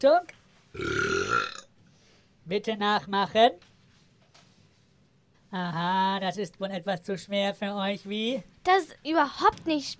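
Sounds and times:
speech: 0.0s - 1.6s, 2.4s - 3.7s, 5.5s - 9.9s
loud drawn-out burp with deep rough rumble: 0.8s - 1.7s.

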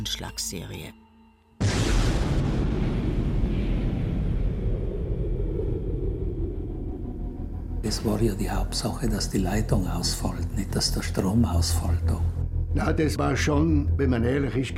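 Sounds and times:
speech: 0.0s - 1.0s, 7.9s - 14.7s
loud explosion of a blown-up power pylon: 1.6s - 7.4s
deep rolling rumble: 1.7s - 8.8s.

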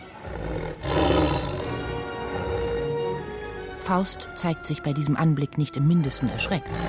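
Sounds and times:
tiger roaring: 0.1s - 3.5s, 6.6s - 6.8s
speech: 3.9s - 6.8s.

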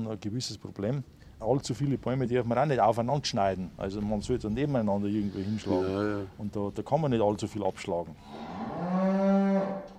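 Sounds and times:
speech: 0.0s - 8.6s
cow mooing: 5.2s - 6.3s, 8.2s - 9.9s.

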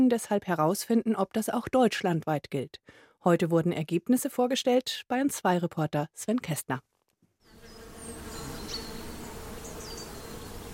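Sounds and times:
speech: 0.0s - 6.9s
faint bird chirps: 7.4s - 10.6s
bees and bumblebees buzzing in spring meadow: 7.5s - 10.7s.

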